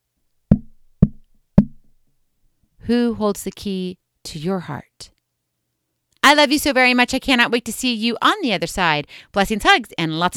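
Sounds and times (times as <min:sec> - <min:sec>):
firm knocks on a door: 0:00.5 - 0:01.9
speech: 0:02.9 - 0:05.1, 0:06.3 - 0:10.3.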